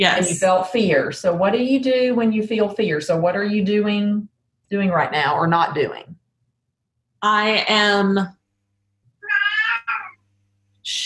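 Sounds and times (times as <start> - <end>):
speech: 0.0 - 6.2, 7.2 - 8.4, 10.8 - 11.0
cat meowing loudly: 9.2 - 10.1.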